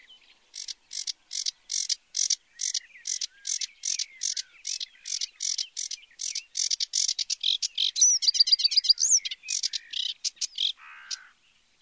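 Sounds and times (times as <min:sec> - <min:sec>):
Sedge warbler song: 0:00.0 - 0:11.8.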